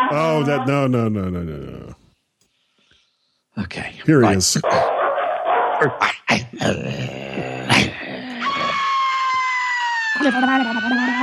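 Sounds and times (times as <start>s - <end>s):
dog barking and growling: 0.0s - 1.1s, 4.2s - 9.0s
speech: 0.1s - 2.0s, 3.6s - 5.0s, 5.8s - 7.8s, 10.2s - 11.2s
laughter: 0.2s - 1.9s, 7.7s - 9.0s, 10.1s - 11.2s.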